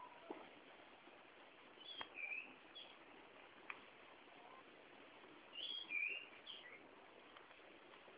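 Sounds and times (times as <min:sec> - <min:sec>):
faint steady background hiss: 0:00.0 - 0:08.1
Malabar whistling thrush giving high whistled notes: 0:01.8 - 0:03.0, 0:05.5 - 0:06.8.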